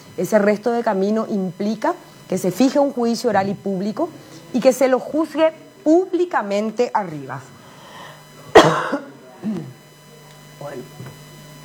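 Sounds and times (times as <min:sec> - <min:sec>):
speech: 0:00.2 - 0:07.6, 0:08.6 - 0:09.7, 0:10.6 - 0:11.2
woman coughing into microphone: 0:08.5 - 0:09.8
throat sounds: 0:08.7 - 0:09.8.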